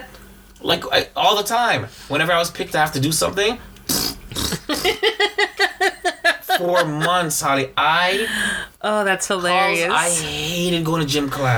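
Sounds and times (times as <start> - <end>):
speech: 0.6 - 3.7, 4.7 - 5.9, 6.6 - 11.5
voice imitating a fart made by a shoe: 3.9 - 5.0
laughter: 4.5 - 7.5.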